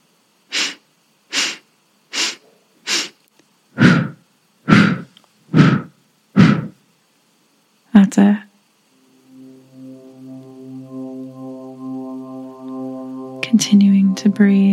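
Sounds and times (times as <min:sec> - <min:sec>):
deep breathing, inhaling and exhaling: 0:03.8 - 0:06.8
speech: 0:08.1 - 0:08.5, 0:13.6 - 0:14.7.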